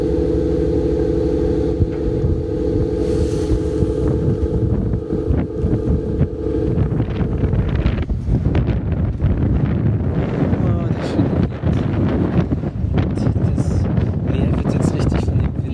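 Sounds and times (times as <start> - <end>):
small motorboat engine drone on the water: 0.0 - 15.7
wind buffeting the microphone: 0.0 - 15.7.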